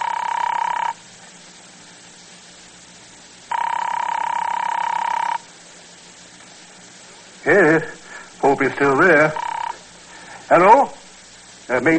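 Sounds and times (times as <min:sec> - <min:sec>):
telephone ringback tone heard through the line: 0:00.0 - 0:01.0, 0:03.5 - 0:05.4, 0:09.1 - 0:09.8
speech: 0:07.4 - 0:07.9, 0:08.6 - 0:09.5, 0:10.5 - 0:11.0, 0:11.7 - 0:11.9.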